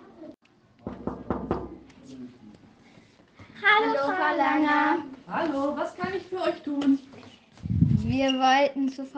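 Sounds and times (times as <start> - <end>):
firm knocking on the door of a secretary's office: 0.8 - 1.8
speech: 3.6 - 7.2, 8.0 - 9.1.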